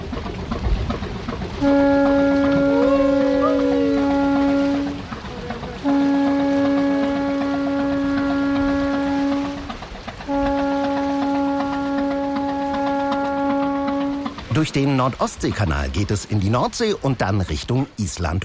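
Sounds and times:
low rumble of a ship getting under way: 0.0 - 17.6
speech: 1.6 - 1.9, 14.6 - 18.4
ship's deep horn blasts as the ship leaves the quay: 1.6 - 14.6.

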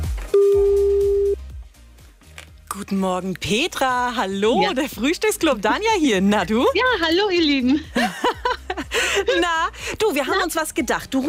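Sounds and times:
telephone ringing tone calling a listener at home: 0.4 - 1.4
speech: 2.8 - 8.4, 9.2 - 11.2
laughter: 7.6 - 9.7.

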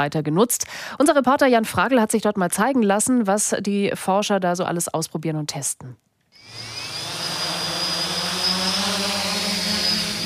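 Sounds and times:
speech: 0.0 - 6.7
two drones taking off inside a huge test cage: 6.4 - 10.2.

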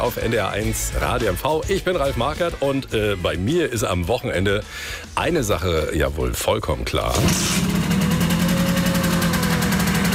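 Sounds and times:
speech: 0.0 - 7.8
car engine running with a loud low rumble: 7.1 - 10.1.

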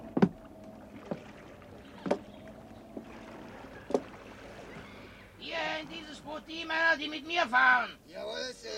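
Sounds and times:
oars of rowboats dipping and pulling through water: 0.0 - 6.7
faint breeze: 0.0 - 8.7
speech: 5.8 - 8.7.

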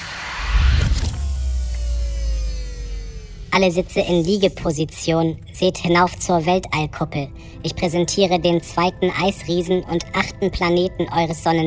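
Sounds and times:
mechanical whirring of a spaceship command bridge retracting: 0.0 - 3.6
speech: 3.6 - 11.6.

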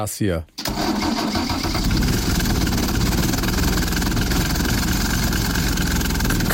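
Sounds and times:
speech: 0.0 - 1.0
small engine of a slope tractor chugging at idle: 1.1 - 6.5
rhythmic knocking of a slope tractor engine: 2.0 - 6.5.

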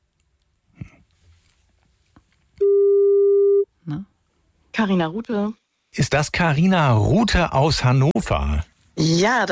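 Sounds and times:
outgoing phone call ringing tone: 2.6 - 3.7
speech: 4.8 - 9.4.

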